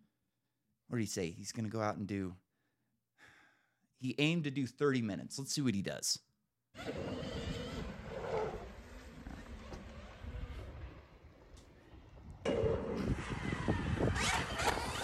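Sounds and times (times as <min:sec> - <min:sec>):
speech: 0:00.9 - 0:02.4, 0:04.0 - 0:07.1
race car lapping a track: 0:06.8 - 0:15.0
race car tires gripping the track surface: 0:06.8 - 0:15.0.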